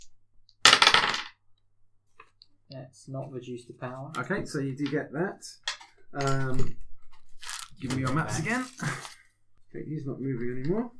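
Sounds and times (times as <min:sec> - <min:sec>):
two dice rolled across a hard surface in a board game: 0:00.0 - 0:01.4, 0:05.6 - 0:09.2
speech: 0:02.7 - 0:06.8, 0:07.8 - 0:10.9.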